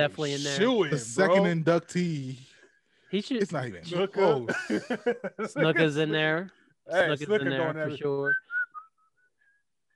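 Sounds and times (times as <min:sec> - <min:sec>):
speech: 0:00.0 - 0:02.5, 0:03.1 - 0:08.4
laughter: 0:04.2 - 0:06.0
person whistling a short tune: 0:08.3 - 0:09.9.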